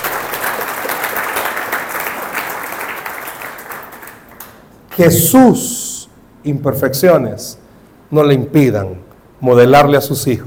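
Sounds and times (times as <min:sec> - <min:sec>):
church audience applauding: 0:00.0 - 0:04.7
speech: 0:05.0 - 0:05.8, 0:06.4 - 0:10.4.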